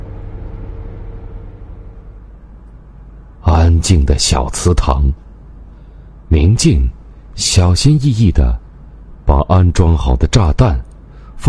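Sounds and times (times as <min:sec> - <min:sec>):
car engine rumbling while driving along a long street: 0:00.0 - 0:02.6
speech: 0:03.7 - 0:05.2, 0:06.3 - 0:08.6, 0:09.3 - 0:11.4.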